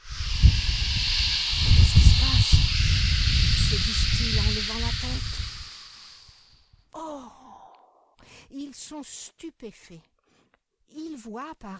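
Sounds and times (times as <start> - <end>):
strong rushing wind: 0.0 - 6.4
speech: 3.7 - 5.4, 8.8 - 10.1, 10.9 - 11.7.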